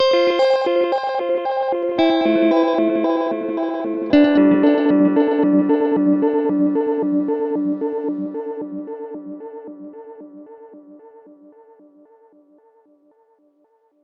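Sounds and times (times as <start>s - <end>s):
fifth cluster chord: 0.0s - 9.6s.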